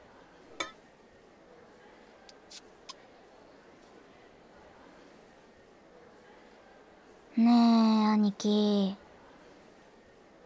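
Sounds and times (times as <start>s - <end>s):
glasses of coffee and café au lait clinking in a Christmas toast: 0.6s - 0.8s
speech: 7.4s - 9.0s.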